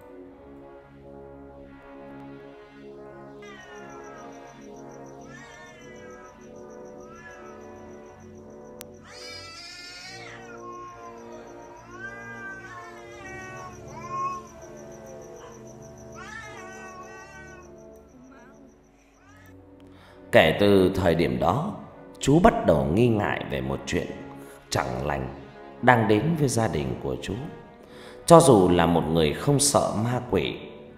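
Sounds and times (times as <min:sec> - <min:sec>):
cat meowing mournfully in the distance: 0:03.4 - 0:08.4, 0:09.0 - 0:19.6
speech: 0:20.3 - 0:27.6, 0:28.3 - 0:30.7.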